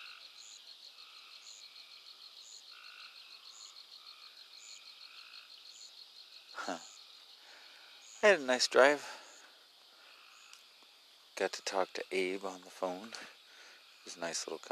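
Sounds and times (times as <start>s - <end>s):
crickets trilling: 0.0s - 14.7s
frogs croaking among trees at night: 0.0s - 14.7s
speech: 6.6s - 6.9s, 8.2s - 9.1s, 11.4s - 13.4s, 14.0s - 14.7s.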